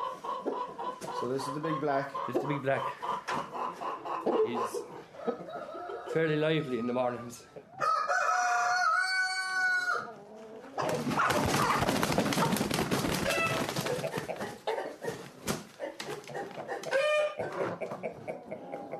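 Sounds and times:
championship chickens clucking while loaded into crates: 0.0s - 18.9s
speech: 1.2s - 3.1s, 4.2s - 7.6s
rooster crowing: 7.8s - 10.1s
noisy flapping of chickens loaded into crates: 10.8s - 14.6s.

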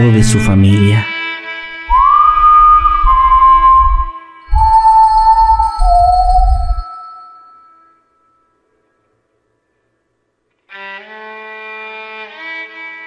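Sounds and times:
speech: 0.0s - 1.1s
pulsing low-pitched accompaniment: 1.9s - 7.6s
traveler whistling a melody while walking: 1.9s - 7.8s.

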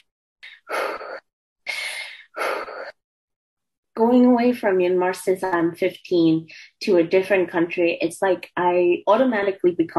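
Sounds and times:
shaky breathy gasps of someone close to tears: 0.4s - 3.0s
speech: 4.0s - 9.9s.

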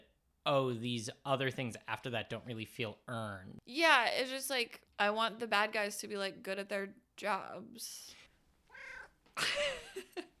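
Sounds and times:
speech: 0.4s - 8.2s, 9.4s - 10.3s
cat meowing and yowling: 8.7s - 9.2s.

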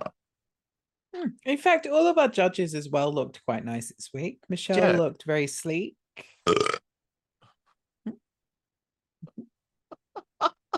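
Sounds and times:
speech: 1.2s - 6.8s
long burp: 6.4s - 6.9s.

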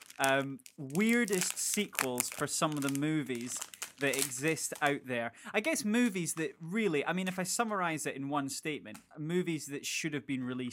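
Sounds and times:
chocolate bar wrapper crinkling and rustling: 0.0s - 5.0s
speech: 0.2s - 10.7s.

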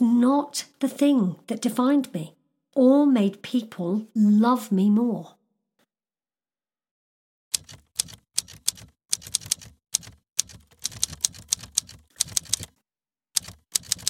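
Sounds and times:
speech: 0.2s - 5.4s
old-fashioned typewriter keys clacking: 7.6s - 12.8s, 13.4s - 14.0s.

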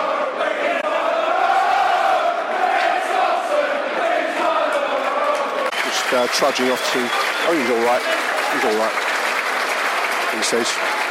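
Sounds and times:
football stadium crowd chanting: 0.0s - 8.7s
large football stadium crowd roaring: 0.0s - 11.0s
speech: 6.1s - 9.1s, 10.4s - 11.0s.

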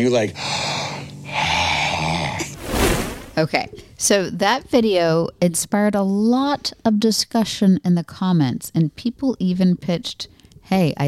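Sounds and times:
speech: 0.0s - 0.7s, 3.4s - 11.0s
heavy rasping breathing of a person asleep: 0.3s - 2.6s.

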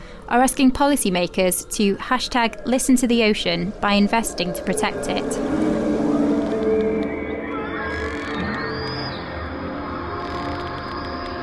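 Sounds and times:
speech: 0.3s - 5.6s
dense wash of layered sustained tones in a sound art composition: 0.5s - 11.4s
gliding whale-like calls and moans inspired by humpback whale songs: 2.4s - 11.4s.

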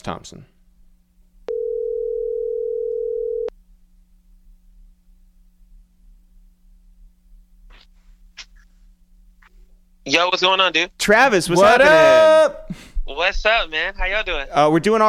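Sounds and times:
speech: 0.0s - 0.6s, 10.1s - 15.0s
telephone dial tone while placing a call: 1.5s - 3.5s.

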